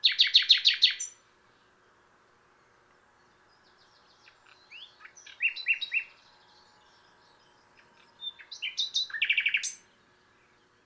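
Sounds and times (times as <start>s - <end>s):
Common nightingale Luscinia megarhynchos song with trill: 0.0s - 1.8s, 2.4s - 10.8s.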